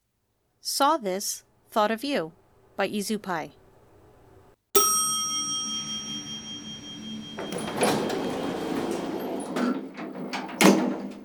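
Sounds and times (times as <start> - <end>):
speech: 0.6 - 3.6
bright elevator chime: 4.8 - 11.2
elevator doors meeting with soft thuds: 5.7 - 11.2.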